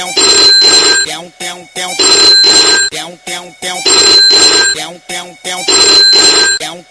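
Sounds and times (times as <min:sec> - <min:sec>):
crazy old phone ringtone: 0:00.2 - 0:01.1, 0:02.0 - 0:03.0, 0:03.8 - 0:04.9, 0:05.7 - 0:06.6.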